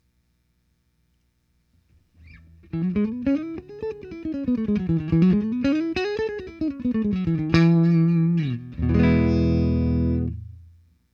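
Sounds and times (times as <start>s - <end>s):
Fender Twin Reverb 2 amplified solo: 2.3s - 10.6s.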